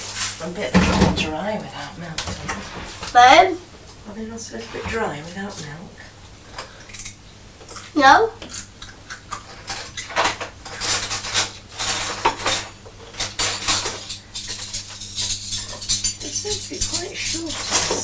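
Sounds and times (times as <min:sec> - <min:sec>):
steady low hum: 0:00.0 - 0:18.0
speech: 0:00.4 - 0:06.2, 0:07.9 - 0:08.7, 0:16.7 - 0:18.0
metal cereal spoons clattering as someone rummages among cutlery: 0:08.6 - 0:18.0.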